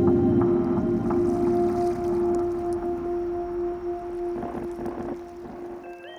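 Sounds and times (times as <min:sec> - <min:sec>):
creaky pads: 0:00.0 - 0:06.1.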